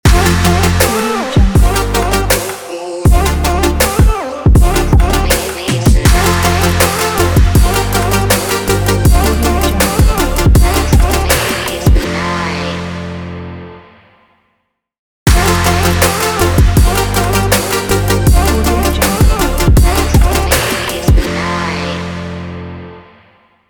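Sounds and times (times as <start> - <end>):
future bass logo jingle: 0.1 - 2.5, 3.1 - 4.0, 4.6 - 12.5, 15.3 - 21.9.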